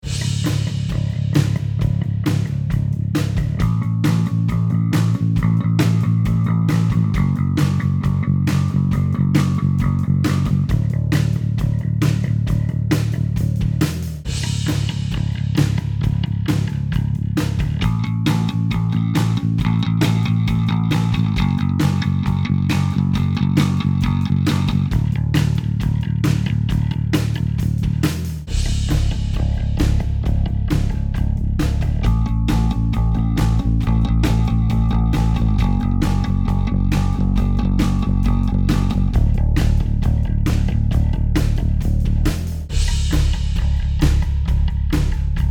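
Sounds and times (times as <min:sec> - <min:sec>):
bass sounds: 0:00.0 - 0:45.4.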